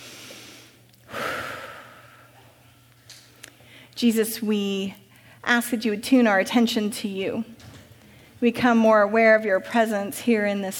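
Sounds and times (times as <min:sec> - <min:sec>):
deep breath during a church service: 0:00.0 - 0:02.4
faint steady hum: 0:00.0 - 0:10.7
speech: 0:04.0 - 0:07.7, 0:08.4 - 0:10.7.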